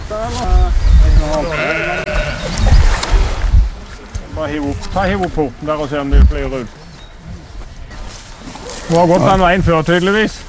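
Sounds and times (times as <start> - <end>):
speech: 0.1 - 2.7, 4.4 - 6.8, 8.9 - 10.4
sheep bleating at a farm outside a fence: 1.4 - 2.5.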